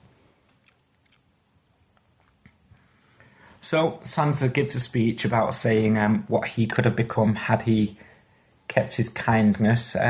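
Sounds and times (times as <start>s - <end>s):
person crunching and chewing a snack: 0.6s - 1.3s
speech: 3.6s - 8.1s, 8.7s - 10.0s.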